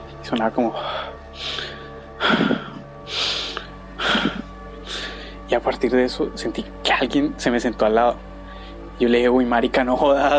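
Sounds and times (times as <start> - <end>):
speech: 0.3 - 1.6, 5.5 - 8.3, 9.0 - 10.3
person imitating heavy breathing: 0.8 - 5.3.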